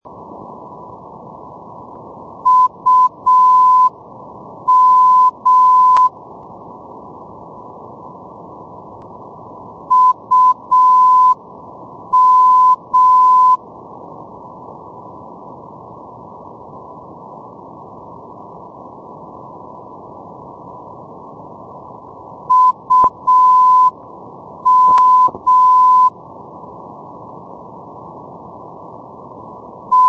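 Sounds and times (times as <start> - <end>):
NDB radio beacon signal: 2.4 - 4.0, 4.7 - 6.2, 9.9 - 11.4, 12.1 - 13.6, 22.5 - 24.0, 24.6 - 26.2.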